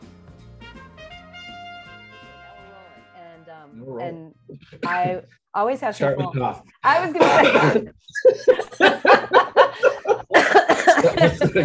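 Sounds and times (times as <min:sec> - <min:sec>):
speech: 0:03.7 - 0:10.2, 0:11.0 - 0:11.6
laughter: 0:06.0 - 0:11.6
person coughing harshly: 0:07.2 - 0:08.6, 0:10.0 - 0:11.6.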